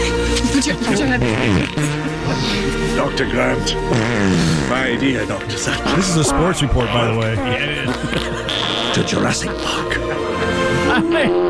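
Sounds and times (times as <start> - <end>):
laughter: 0.4 - 3.0, 5.2 - 11.4
speech: 0.6 - 10.1, 10.9 - 11.4
loud buzzy fart sound effect: 1.2 - 2.2, 3.9 - 5.0, 5.9 - 9.4.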